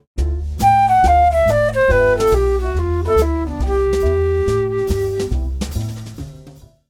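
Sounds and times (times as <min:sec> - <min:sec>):
G7 major bebop scale over a two-five progression: 0:00.6 - 0:05.7.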